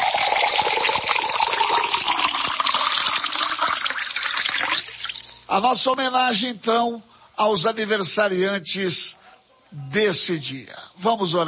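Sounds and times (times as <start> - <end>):
drinking water pouring into a cup: 0.0 - 5.5
speech: 5.5 - 11.4.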